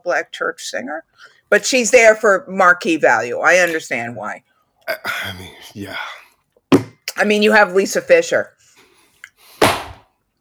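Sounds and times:
speech: 0.0 - 6.2, 7.2 - 8.6
sharp loud hand slap: 9.6 - 10.0.

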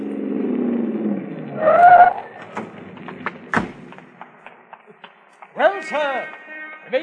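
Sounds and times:
car engine humming low: 0.0 - 4.4
car tire squealing turning into a parking lot: 1.4 - 2.7
speech: 5.9 - 7.0.

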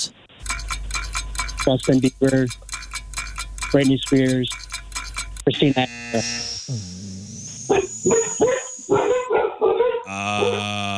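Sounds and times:
droning tonal hum: 0.4 - 9.3
speech: 1.6 - 2.7, 3.7 - 4.6, 5.5 - 7.0, 7.7 - 9.0
dogs whining yips: 7.5 - 10.1
several dogs barking: 7.7 - 10.6.

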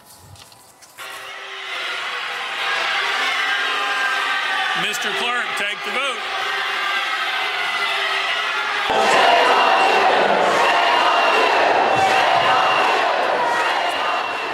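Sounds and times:
large crowd of protesters in a state House chamber balcony screaming booing and shouting: 1.0 - 14.5
speech: 4.8 - 6.4.

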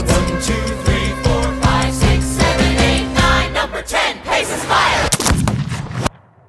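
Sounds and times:
punchy band music with rhythmic hits: 0.0 - 3.9
gunshot sound effect reversed and choked: 5.0 - 6.4.

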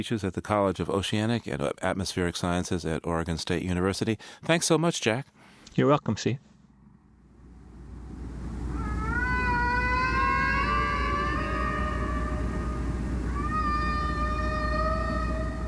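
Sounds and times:
speech: 0.0 - 6.5
long rising whale calls: 8.6 - 15.6.

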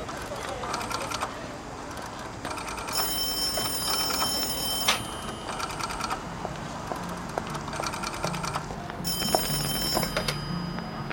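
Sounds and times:
low noise: 0.0 - 11.1
telephone ringing for a collect call: 2.5 - 11.1.

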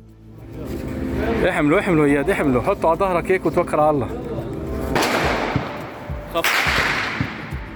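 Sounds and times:
people talking: 0.4 - 4.6
gunshots: 5.0 - 7.7.

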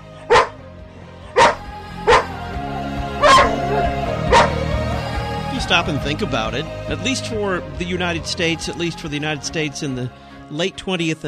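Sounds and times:
dog barking sharply: 0.3 - 0.6, 1.4 - 2.4, 3.2 - 3.6, 4.3 - 4.6
speech: 5.6 - 11.2.

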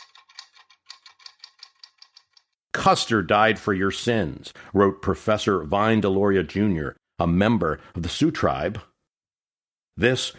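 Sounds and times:
typewriter keys clacking: 0.0 - 2.5
speech: 2.8 - 8.9, 10.0 - 10.3.

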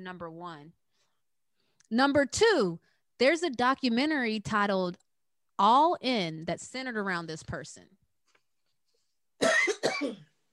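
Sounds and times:
speech: 0.0 - 0.8, 1.9 - 5.0, 5.6 - 8.0, 9.4 - 10.3
person coughing: 9.4 - 10.4.

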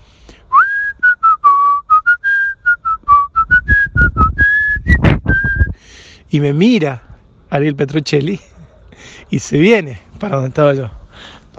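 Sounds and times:
person whistling a folk song melody: 0.5 - 5.8
speech: 6.3 - 11.4.

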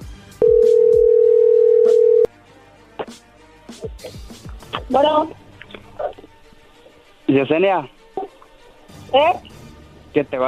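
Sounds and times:
telephone ringing for an incoming call: 0.4 - 2.3
speech: 4.9 - 5.4, 7.3 - 8.0, 9.1 - 9.5, 10.1 - 10.4.

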